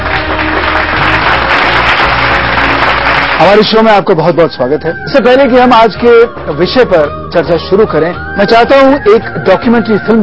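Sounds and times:
audience applause: 0.0s - 3.7s
speech: 3.4s - 10.2s.

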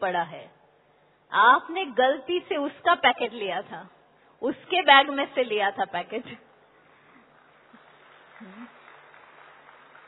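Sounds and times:
speech: 0.0s - 0.6s, 1.3s - 6.5s
audience applause: 7.3s - 10.0s.

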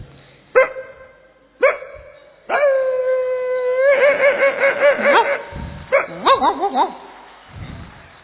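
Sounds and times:
thin little street dog barking: 0.6s - 2.1s, 4.9s - 7.1s
thin little street dog whining howl: 2.5s - 7.0s.

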